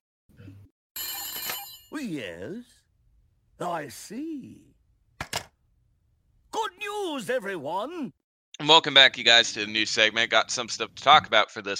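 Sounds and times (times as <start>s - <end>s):
telephone bell ringing: 1.0s - 2.0s
speech: 1.9s - 2.8s, 3.6s - 4.7s, 6.8s - 11.7s.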